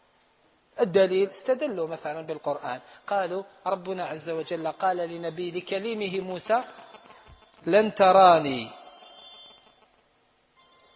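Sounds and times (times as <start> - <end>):
steady hiss: 0.0 - 10.9
speech: 0.8 - 7.0, 7.6 - 8.8
mobile phone electronic ringtone: 3.8 - 10.0, 10.6 - 10.9.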